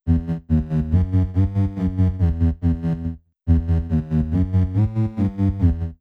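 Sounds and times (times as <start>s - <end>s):
bass: 0.0s - 5.9s.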